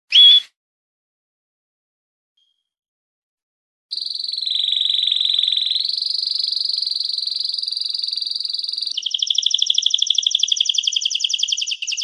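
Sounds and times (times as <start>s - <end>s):
canary singing a rapid rolling trill: 0.1s - 0.5s, 3.9s - 12.0s.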